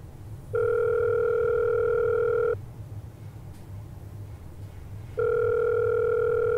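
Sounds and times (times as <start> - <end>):
low hum: 0.0 - 6.5
phone ringback tone through the earpiece: 0.6 - 2.6, 5.2 - 6.5.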